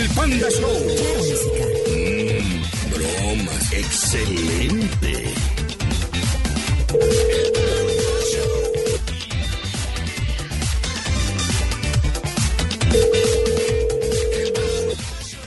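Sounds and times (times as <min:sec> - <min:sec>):
busy rhythmic music bed: 0:00.0 - 0:15.4
speech: 0:00.2 - 0:05.8
outgoing phone call ringback tone for a prank call: 0:00.4 - 0:02.5, 0:06.9 - 0:09.0, 0:12.8 - 0:15.0.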